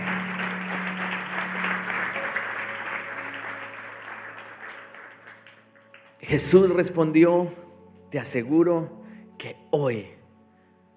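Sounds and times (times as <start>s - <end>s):
audience applause: 0.0s - 6.2s
faint sustained musical tones: 0.0s - 10.9s
speech: 6.3s - 10.2s.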